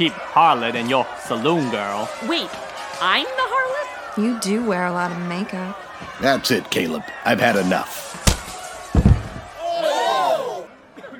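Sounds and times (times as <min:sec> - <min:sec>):
speech: 0:00.0 - 0:08.1
heavy punch knocking a man unconscious: 0:08.2 - 0:09.5.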